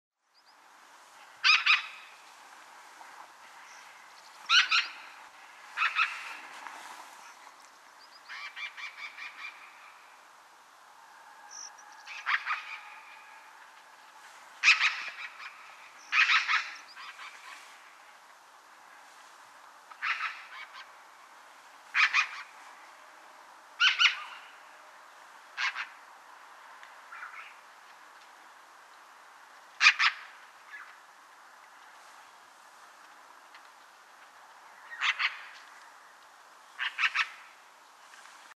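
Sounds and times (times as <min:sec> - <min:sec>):
Black-rumped magpie Pica bottanensis call: 0:01.4 - 0:02.2, 0:03.6 - 0:06.4, 0:08.2 - 0:09.8, 0:11.5 - 0:13.5, 0:14.6 - 0:17.6, 0:19.9 - 0:20.9, 0:21.9 - 0:22.6, 0:23.8 - 0:24.6, 0:25.6 - 0:26.0, 0:29.8 - 0:31.0, 0:34.8 - 0:35.6, 0:36.8 - 0:37.6.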